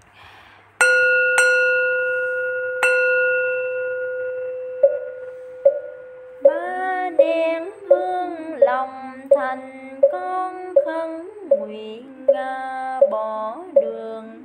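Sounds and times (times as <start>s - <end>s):
Buddhist temple bell ringing for the souls of the dead: 0.8s - 8.3s
person chanting: 6.4s - 14.4s.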